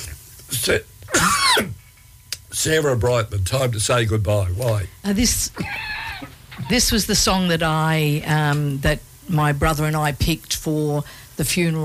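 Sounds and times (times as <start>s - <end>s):
speech: 0.5s - 1.8s, 2.5s - 11.8s
person coughing: 1.1s - 1.8s.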